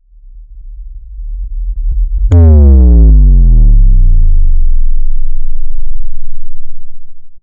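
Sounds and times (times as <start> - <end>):
cinematic bass drop: 1.9 - 7.4.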